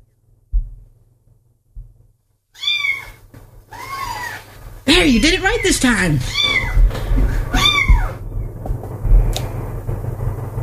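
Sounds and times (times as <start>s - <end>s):
faint hum: 0.0s - 10.6s
soft low thumps: 0.1s - 2.4s, 4.6s - 10.6s
kitten giving high thin meows: 2.6s - 4.4s, 6.2s - 6.8s, 7.5s - 8.2s
speech: 5.0s - 6.6s.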